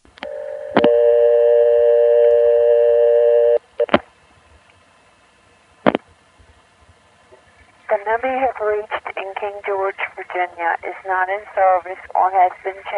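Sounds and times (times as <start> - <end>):
steady loud multi-pitched 2600 Hz trunk tone: 0.1 - 4.0
telephone line click: 0.2 - 4.0
speech: 8.1 - 12.9.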